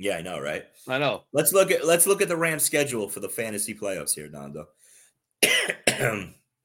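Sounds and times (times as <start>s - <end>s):
speech: 0.0s - 6.4s
harsh raspy coughs: 5.4s - 6.4s.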